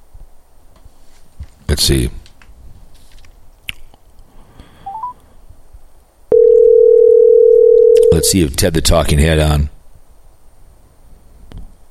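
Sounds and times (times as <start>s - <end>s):
rustling: 0.8s - 3.4s
speech: 1.8s - 2.2s, 8.2s - 9.8s
phone line faint rising beeps: 4.8s - 5.2s, 6.3s - 8.3s.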